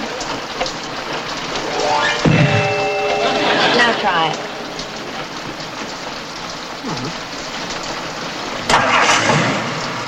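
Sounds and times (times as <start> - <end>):
constant rain-like hiss: 0.0 - 10.0
car engine starting: 8.7 - 10.0.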